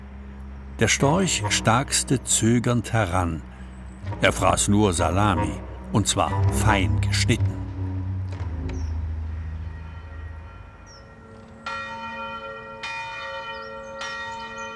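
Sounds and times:
low droning hum: 0:00.0 - 0:11.2
speech: 0:00.8 - 0:03.5, 0:04.1 - 0:07.4
church bells ringing from a nearby tower: 0:00.8 - 0:14.7.

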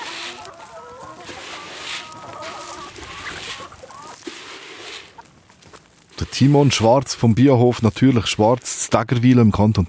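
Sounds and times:
chickens squawking sharply: 0:00.0 - 0:07.1
flock of chickens clucking on an organic farm in Tägerwilen, Switzerland: 0:00.0 - 0:08.6
speech: 0:06.2 - 0:09.8.

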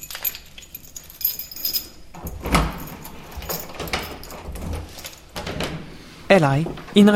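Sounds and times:
keys jingling and rattling: 0:00.0 - 0:05.4
low ambient hum: 0:00.0 - 0:07.1
house door being worked open with clunk and rustling: 0:02.1 - 0:06.0
speech: 0:06.3 - 0:07.1.

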